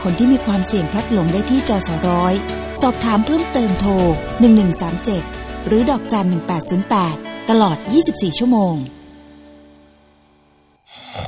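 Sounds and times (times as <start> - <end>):
speech: 0.0 - 9.0
sleeping person snoring with a low buzzing rattle: 10.2 - 11.2.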